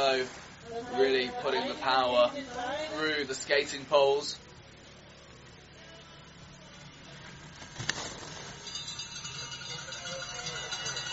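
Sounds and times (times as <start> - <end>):
speech: 0.0 - 4.5
cowbells clanging from a crowd of spectators: 8.3 - 11.1.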